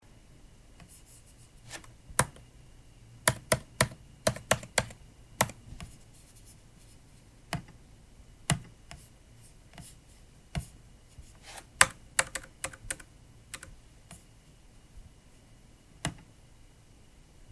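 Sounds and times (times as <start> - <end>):
random typing on a computer keyboard: 1.7 - 2.4, 3.3 - 5.6, 11.8 - 13.8
computer trackpad clicks: 1.8 - 2.4, 3.3 - 5.6, 11.8 - 13.7.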